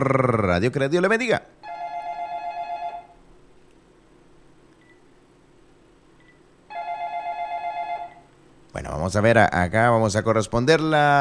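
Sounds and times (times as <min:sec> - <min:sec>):
speech: 0:00.0 - 0:01.6, 0:08.8 - 0:11.2
telephone ringing on a radio station call-in line: 0:01.6 - 0:03.2, 0:06.7 - 0:08.3.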